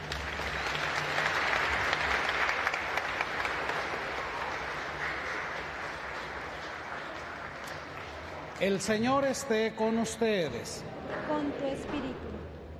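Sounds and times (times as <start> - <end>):
large gathering applauding in a reverberant room: 0.0 - 9.6
speech: 8.6 - 12.3.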